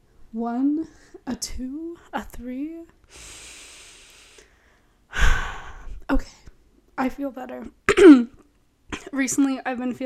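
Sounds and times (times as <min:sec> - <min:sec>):
speech: 0:00.3 - 0:03.5, 0:06.1 - 0:06.4, 0:07.0 - 0:08.4, 0:09.1 - 0:10.0
deep breath inhale as a breathing exercise: 0:03.1 - 0:06.0
rushing exhale as a breathing exercise: 0:03.1 - 0:06.0.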